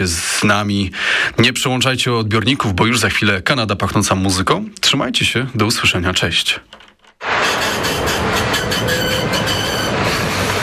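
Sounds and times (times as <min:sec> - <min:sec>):
speech: 0:00.0 - 0:06.8
tram rumbling as it pulls away: 0:07.2 - 0:10.6
metallic rail clatter: 0:07.3 - 0:10.6.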